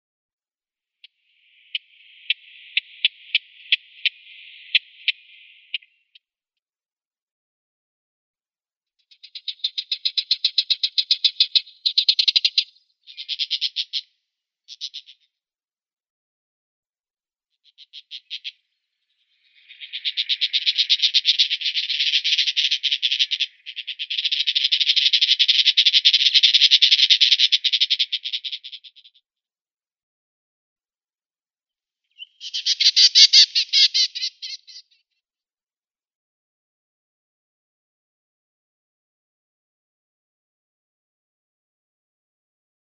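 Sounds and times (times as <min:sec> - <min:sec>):
Western Orphean Warbler calls: 0:01.0 - 0:06.2, 0:09.0 - 0:14.1, 0:14.7 - 0:15.3, 0:17.6 - 0:29.2, 0:32.1 - 0:35.0.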